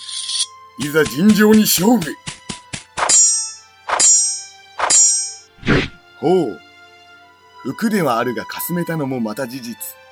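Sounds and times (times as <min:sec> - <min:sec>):
speech: 0:00.8 - 0:02.3, 0:06.2 - 0:06.6, 0:07.6 - 0:10.0
swords clashing in a duel: 0:01.0 - 0:05.8.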